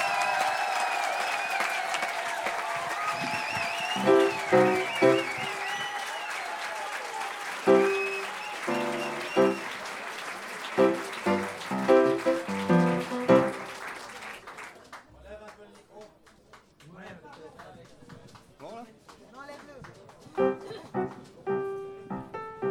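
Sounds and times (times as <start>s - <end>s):
crowd cheering: 0.0s - 15.0s, 19.9s - 22.6s
crowd applauding: 0.0s - 22.6s.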